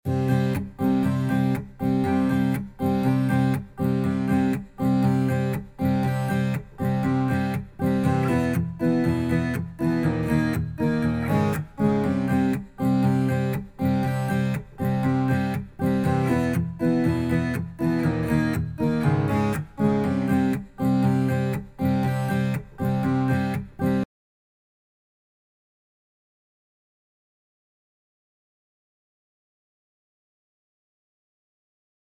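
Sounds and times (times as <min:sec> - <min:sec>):
processed guitar softly swinging almost without attacks: 0:00.1 - 0:24.0.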